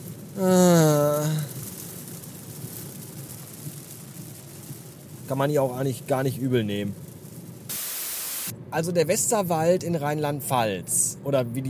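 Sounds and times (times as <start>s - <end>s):
heavy rain in the Westerwald, Rheinland-Pfalz, Germany: 0.0s - 8.6s
speech: 0.4s - 1.4s, 5.3s - 7.0s, 8.7s - 11.6s.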